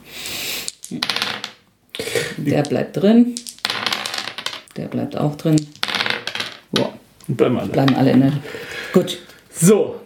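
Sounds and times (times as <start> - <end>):
dice rattling onto a hard surface: 0.6 - 1.6, 2.5 - 7.0, 7.7 - 8.4
speech: 0.9 - 1.2, 2.4 - 3.5, 4.8 - 5.8, 6.7 - 10.0.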